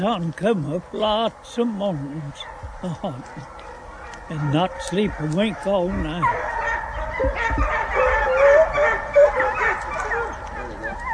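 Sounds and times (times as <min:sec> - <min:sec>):
speech: 0:00.0 - 0:03.6, 0:04.3 - 0:06.6, 0:07.2 - 0:08.0
hunting hounds barking and yelping during a night hunt: 0:01.8 - 0:11.1
hunting hound whimpering: 0:07.2 - 0:11.1.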